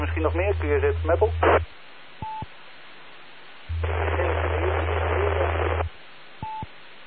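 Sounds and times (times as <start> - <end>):
faint distant amateur radio transmission: 0.0 - 1.7, 3.7 - 5.9
low hum: 0.0 - 1.7, 3.6 - 6.6
loud burst of crackling radio static: 0.0 - 7.0
steady radio hiss: 0.0 - 7.0
speech: 0.1 - 1.8.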